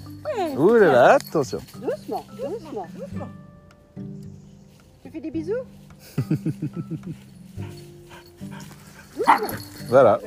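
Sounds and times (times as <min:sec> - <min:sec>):
speech: 0:00.3 - 0:03.4, 0:04.0 - 0:04.4, 0:05.1 - 0:07.8, 0:08.4 - 0:10.2
laughter: 0:06.0 - 0:07.2
dog yelping: 0:08.2 - 0:10.1
dog barking: 0:09.0 - 0:10.0.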